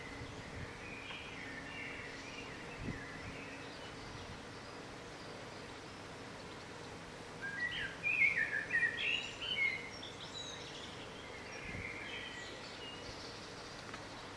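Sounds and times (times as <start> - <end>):
bird song with bright chirps and warbled notes: 0.0 - 14.3
steady background hiss: 0.0 - 14.3.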